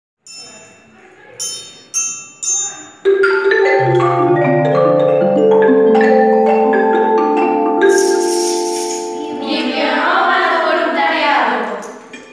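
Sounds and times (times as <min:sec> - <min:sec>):
jingle: 0:01.4 - 0:10.6.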